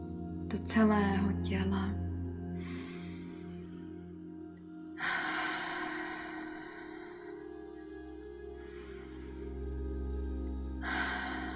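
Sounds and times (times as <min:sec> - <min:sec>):
steady low drone: 0:00.0 - 0:11.5
speech: 0:00.5 - 0:02.0
slow deep breaths during a guided relaxation: 0:02.6 - 0:03.8, 0:04.9 - 0:11.5.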